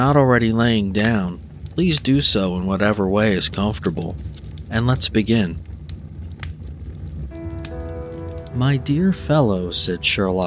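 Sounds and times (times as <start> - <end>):
speech: 0.0 - 5.7, 8.6 - 10.4
fireplace fire crackling: 0.0 - 10.4
soft sustained musical tones: 7.3 - 10.4.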